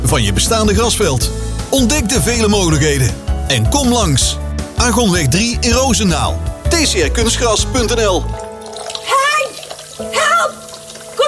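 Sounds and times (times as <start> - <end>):
speech: 0.1 - 8.4
water running and splashing: 6.6 - 11.2.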